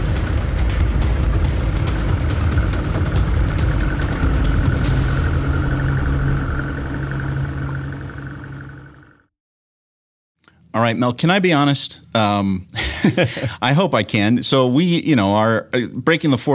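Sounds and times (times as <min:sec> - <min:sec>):
boat motor running as boat leaves dock: 0:00.0 - 0:09.3
speech: 0:10.8 - 0:16.5
laughter: 0:12.8 - 0:13.6.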